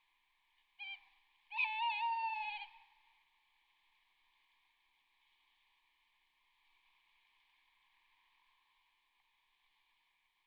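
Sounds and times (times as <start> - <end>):
tawny owl hooting: 0.8 - 2.9.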